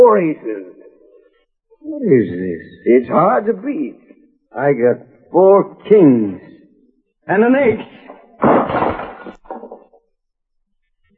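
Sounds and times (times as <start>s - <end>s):
speech: 0.0s - 0.8s, 1.8s - 6.5s, 7.3s - 9.4s
lamp glass shattering: 8.4s - 9.8s
lamp crashing to the floor: 8.4s - 9.9s.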